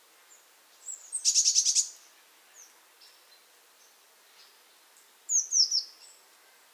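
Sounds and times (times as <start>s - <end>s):
Eurasian blue tit Cyanistes caeruleus soft notes and high thin calls: 1.1s - 2.0s
Eurasian blue tit Cyanistes caeruleus stuttering churr: 1.2s - 1.9s.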